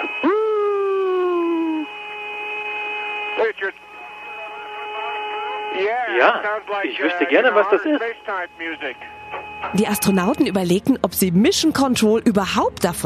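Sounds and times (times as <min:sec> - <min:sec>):
eerie whistling radio tone recorded by Apollo 10: 0:00.0 - 0:10.8
sharp clicks and bursts of static: 0:01.9 - 0:10.6
speech: 0:03.5 - 0:03.9, 0:05.8 - 0:13.0.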